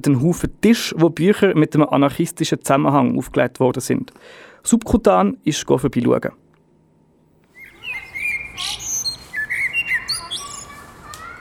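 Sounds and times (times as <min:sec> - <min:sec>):
speech: 0:00.0 - 0:06.4
blackbirds singing on a sunny street: 0:07.4 - 0:11.4.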